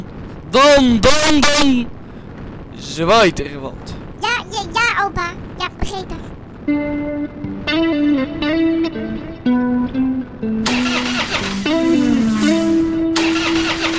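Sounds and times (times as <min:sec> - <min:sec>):
speech: 0:00.5 - 0:02.0, 0:02.8 - 0:10.5
new car engine starting and running rough: 0:10.6 - 0:13.9.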